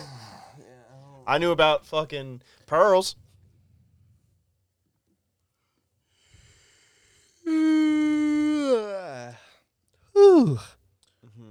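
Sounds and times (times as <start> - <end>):
falling groan-like breath: 0.0 - 1.0, 6.1 - 9.6, 10.2 - 10.8
speech: 1.3 - 3.2, 10.3 - 10.8
long drawn-out yawn: 7.4 - 9.5, 10.2 - 10.7.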